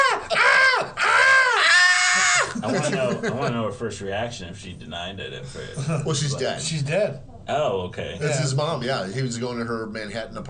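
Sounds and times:
voice imitating a high-pitched girlish scream: 0.0s - 2.6s
laughter: 0.0s - 3.7s
speech: 2.8s - 10.4s.

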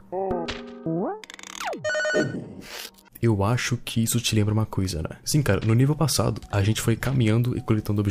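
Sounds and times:
video game giant keyboard key synthetic electronic tones: 0.1s - 3.0s
speech: 2.2s - 8.1s.

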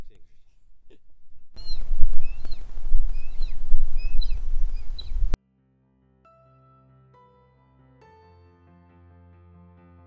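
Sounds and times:
low rumbling: 0.0s - 5.4s
wedge-tailed eagles calling at a raptor rehabilitation refuge in Kettering, Tasmania: 0.0s - 5.4s.

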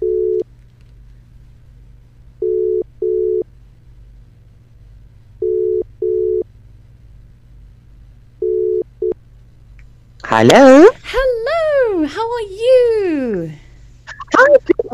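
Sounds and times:
phone dial tone of short paired beeps while placing a call: 0.0s - 0.4s, 2.4s - 3.4s, 5.4s - 6.4s, 8.4s - 9.2s
faint low hum: 0.0s - 14.9s
speech: 10.3s - 11.3s, 12.1s - 13.6s, 14.4s - 14.9s.

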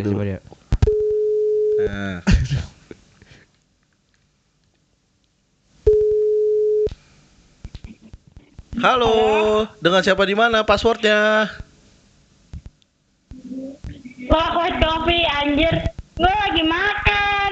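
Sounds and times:
speech: 0.0s - 0.6s, 1.8s - 2.8s, 8.8s - 11.6s, 14.3s - 17.1s
phone ringback tone while dialing: 0.9s - 1.9s, 5.9s - 6.9s.

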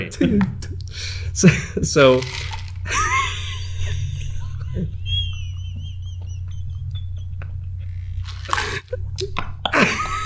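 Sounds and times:
steady low hum: 0.0s - 10.2s
speech: 0.1s - 0.6s, 1.4s - 3.0s
laughter: 1.4s - 2.2s, 2.8s - 10.2s
plastic water bottle crinkling: 2.1s - 2.9s, 8.2s - 8.8s
sipping from a water bottle: 8.1s - 9.3s.

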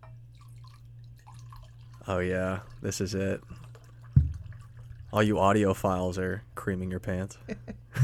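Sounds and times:
wine trickling and splashing into a glass: 0.0s - 5.8s
constant low electrical hum: 0.0s - 8.0s
speech: 2.1s - 3.6s, 5.1s - 7.8s.

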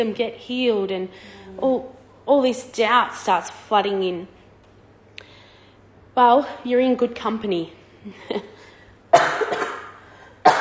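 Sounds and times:
speech: 0.0s - 4.4s, 6.2s - 9.6s
person coughing harshly: 9.1s - 10.5s.

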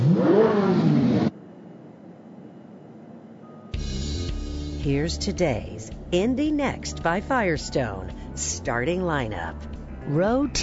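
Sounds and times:
race car engines starting and revving at the Detroit Grand Prix: 0.0s - 1.4s
speech: 4.8s - 10.6s.

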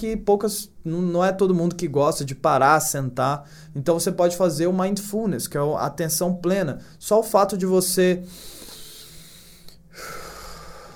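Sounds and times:
speech: 0.0s - 8.6s
long deep breath in and slow exhale: 3.4s - 3.8s, 8.2s - 10.9s.

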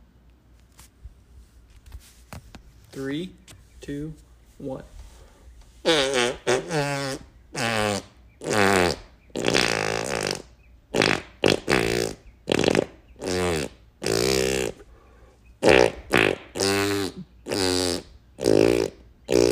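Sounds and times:
speech: 3.0s - 5.0s, 6.7s - 8.0s
fart noises played as a song: 5.8s - 14.9s, 15.6s - 19.5s.

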